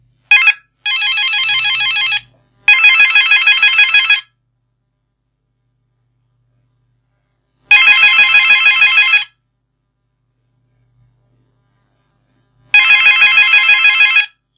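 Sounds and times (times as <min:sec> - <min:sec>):
modern telephone ringtone: 0:00.3 - 0:04.4, 0:07.7 - 0:09.4, 0:12.7 - 0:14.4.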